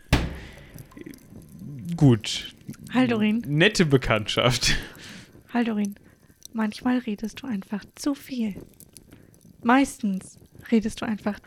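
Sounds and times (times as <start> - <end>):
heavy door slam with a dull thud: 0.0 - 1.0
speech: 2.0 - 4.9, 5.5 - 6.0, 6.6 - 8.8, 9.6 - 11.4.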